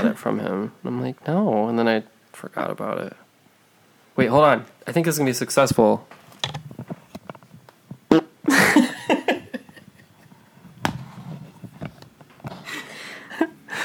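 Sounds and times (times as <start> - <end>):
speech: 0.0 - 3.2, 4.2 - 6.6
short raspy fart: 8.1 - 8.5.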